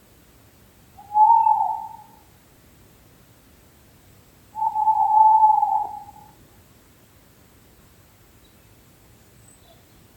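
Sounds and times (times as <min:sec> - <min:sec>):
low background hiss: 0:00.0 - 0:10.1
owl hooting: 0:01.0 - 0:02.3, 0:04.5 - 0:06.4.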